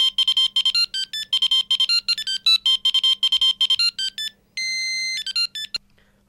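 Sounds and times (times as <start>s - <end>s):
mobile phone ringing with electronic melody: 0.0s - 5.8s.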